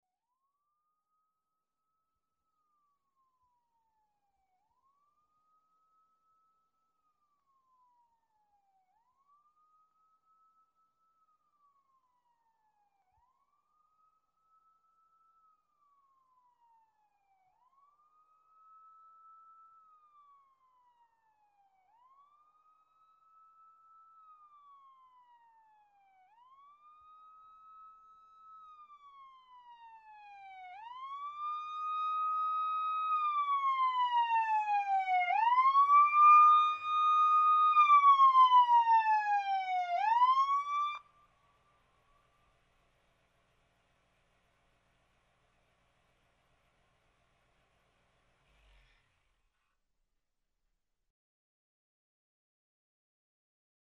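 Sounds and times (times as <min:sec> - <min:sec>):
fire truck siren: 0:02.7 - 0:41.3.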